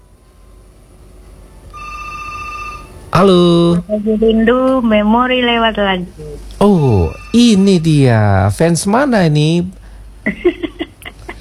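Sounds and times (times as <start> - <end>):
low hum: 0.0 - 11.3
telephone ringing with an electronic trill: 1.7 - 3.2, 6.7 - 8.2
speech: 3.2 - 10.6.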